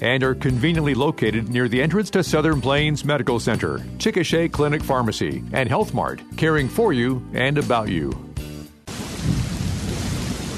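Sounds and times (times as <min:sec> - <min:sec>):
speech: 0:00.0 - 0:08.3
deep rolling thunder: 0:08.9 - 0:10.5
heavy rain: 0:08.9 - 0:10.5.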